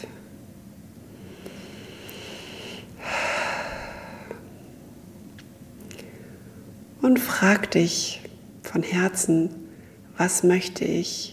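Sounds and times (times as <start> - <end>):
deep breath during a guided breathing exercise: 1.1 - 4.5
speech: 7.1 - 9.6, 10.2 - 11.3.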